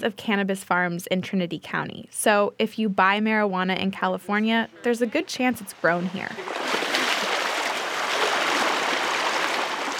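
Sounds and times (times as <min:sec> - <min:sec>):
speech: 0:00.0 - 0:06.8
creek water flowing: 0:05.3 - 0:09.9.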